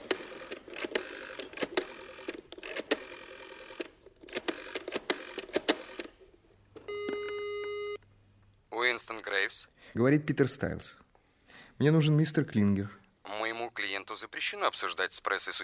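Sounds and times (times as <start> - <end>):
rotary telephone dialing clicks: 0.0 - 6.2
steady electronic tone on a telephone line: 6.9 - 8.0
speech: 9.0 - 11.0, 11.8 - 13.0, 14.2 - 15.6.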